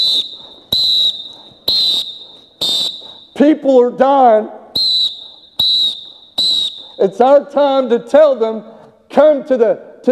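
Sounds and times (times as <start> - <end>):
shrill whistle blasts: 0.0 - 3.5, 4.7 - 8.4
speech: 3.4 - 4.6, 7.0 - 10.1.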